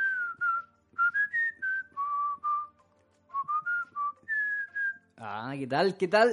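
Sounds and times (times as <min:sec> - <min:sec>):
melodic whistling in a song: 0:00.0 - 0:05.0
soft low musical backing: 0:00.0 - 0:06.3
speech: 0:05.2 - 0:06.3.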